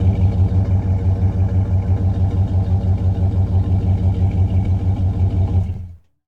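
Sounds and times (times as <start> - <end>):
Dodge Ram truck engine idling: 0.0 - 5.9.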